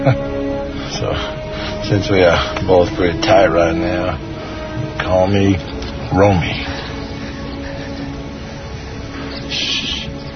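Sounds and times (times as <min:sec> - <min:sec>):
speech: 0:00.0 - 0:00.3, 0:01.0 - 0:04.3, 0:05.0 - 0:06.7
bird calling in the woods: 0:06.6 - 0:10.3.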